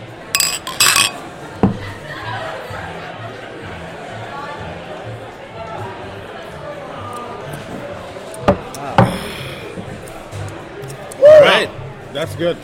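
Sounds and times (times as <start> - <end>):
chatter: 0.0 - 12.6
beer glasses clinking in a toast: 0.4 - 1.9
laughter: 1.8 - 4.0
speech: 12.2 - 12.6.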